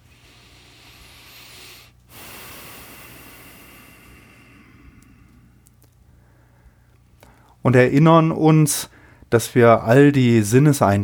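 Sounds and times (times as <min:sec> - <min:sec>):
deep breath in and out: 0:00.0 - 0:07.6, 0:08.9 - 0:09.3
speech: 0:07.6 - 0:11.0.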